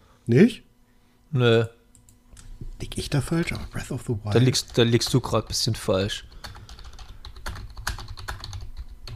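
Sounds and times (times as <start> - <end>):
speech: 0.3 - 0.7, 1.3 - 1.8, 2.8 - 6.3
clicking of keys on a computer keyboard: 4.4 - 5.5, 6.3 - 9.1.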